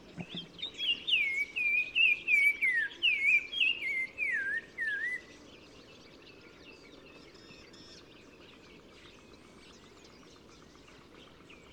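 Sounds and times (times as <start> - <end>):
Black-crowned tchagra (Tchagra senegalus) singing fluty whistled notes in gardens at Oued Massa, Morocco: 0.3 - 5.3.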